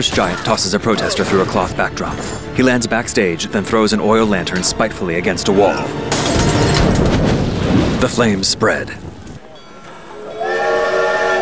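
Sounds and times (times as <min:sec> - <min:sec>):
speech: 0:00.0 - 0:07.4, 0:08.0 - 0:09.0
train whistle at a station: 0:10.2 - 0:11.4.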